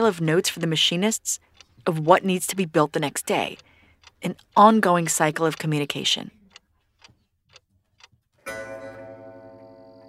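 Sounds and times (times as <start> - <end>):
speech: 0.0 - 6.4
grandfather clock ticking: 0.0 - 10.0
grandfather clock chiming midnight: 8.4 - 10.0.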